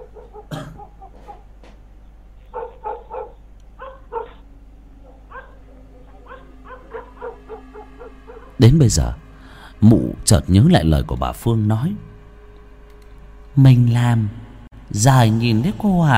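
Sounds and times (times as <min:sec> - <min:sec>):
neighbours' dogs barking in the distance: 0:00.0 - 0:09.7
steady low hum: 0:00.0 - 0:16.1
speech: 0:08.6 - 0:09.2, 0:09.8 - 0:12.1, 0:13.6 - 0:16.1.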